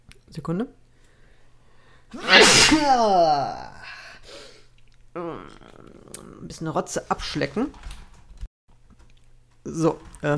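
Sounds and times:
speech: 0.4 - 0.8, 2.1 - 3.7, 5.2 - 8.0, 9.6 - 10.3
person sneezing: 2.1 - 3.7.

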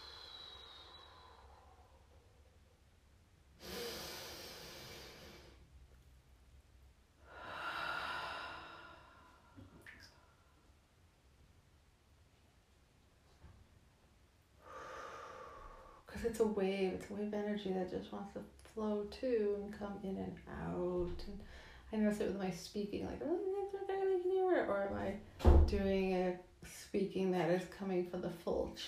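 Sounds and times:
slow deep breathing during a guided breathing exercise: 0.0 - 2.5, 7.2 - 10.6, 14.6 - 16.1
speech: 16.2 - 23.5, 24.6 - 28.8.

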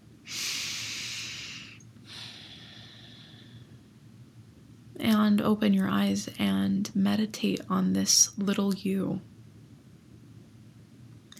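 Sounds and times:
deep breaths during a guided meditation: 0.3 - 3.9
speech: 5.0 - 9.3.

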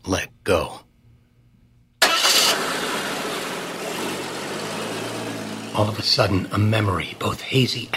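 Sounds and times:
speech: 0.1 - 0.8, 5.8 - 7.9
car engine cranking and catching: 2.0 - 7.9.

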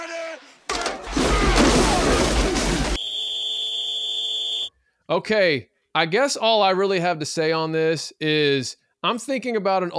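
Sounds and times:
crashing noise: 0.7 - 3.0
shrill referee whistle starting a timed segment: 3.0 - 4.7
speech: 5.1 - 9.9.

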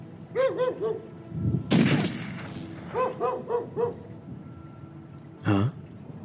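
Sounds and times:
dog barking in sharp yips: 0.4 - 1.0, 2.9 - 4.0
gunshot from a 10mm sidearm: 1.7 - 2.9.

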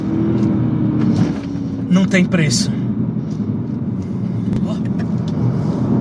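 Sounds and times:
car engine revving and accelerating: 0.0 - 5.9
speech: 2.0 - 2.8.

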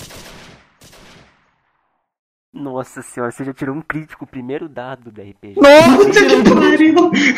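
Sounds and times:
gunshots: 0.0 - 1.9
speech: 2.6 - 7.3.

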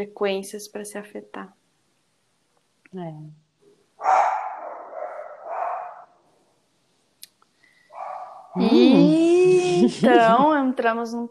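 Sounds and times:
speech: 0.0 - 1.6, 2.9 - 3.4, 8.6 - 11.2
dog barking: 4.0 - 6.2, 7.9 - 8.6
laughter: 8.6 - 10.7.

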